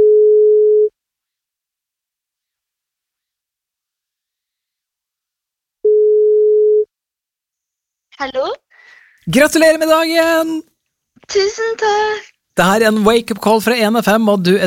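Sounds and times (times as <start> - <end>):
telephone ringing tone while a call is placed: 0.0 - 0.9, 5.9 - 6.9
speech: 8.2 - 8.6, 9.2 - 14.6.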